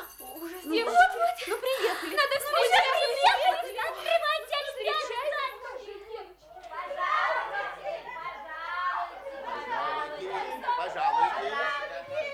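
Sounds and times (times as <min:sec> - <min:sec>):
crowd of children chattering excitedly arriving at a Christmas tree party: 0:00.0 - 0:12.3
children giggling: 0:00.4 - 0:04.4.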